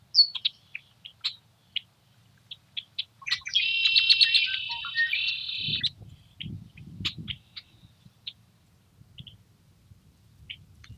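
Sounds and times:
red-winged blackbird chips and buzzing trill in cattails in Montana: 3.2s - 5.9s.

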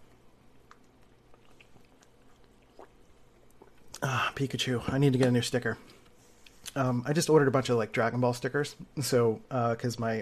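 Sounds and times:
low steady hum: 0.0s - 10.2s
person swallowing water: 0.6s - 4.1s
small liquid slurps: 0.8s - 4.0s
speech: 4.3s - 6.0s, 6.8s - 10.2s.

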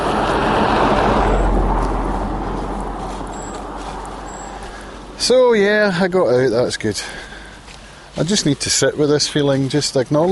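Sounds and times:
car passing by outdoors on a still chilly autumn day: 0.0s - 5.3s
speech: 5.3s - 7.3s, 8.2s - 10.2s.

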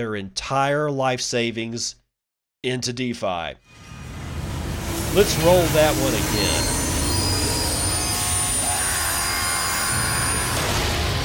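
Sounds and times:
speech: 0.0s - 2.0s, 2.6s - 3.8s, 5.2s - 6.8s
rumble of rolling railcars: 3.9s - 11.2s
train wheels squealing against the rails: 5.0s - 10.7s.

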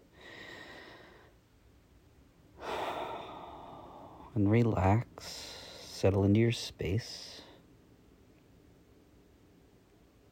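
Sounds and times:
deep breath: 0.1s - 1.4s, 2.6s - 4.4s, 5.2s - 6.0s
speech: 4.4s - 5.4s, 6.0s - 7.4s.

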